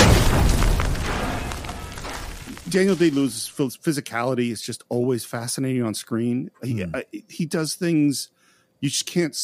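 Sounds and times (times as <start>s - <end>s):
explosion in a mine shaft set off by a lit fuse: 0.0s - 2.8s
speech: 2.7s - 9.4s.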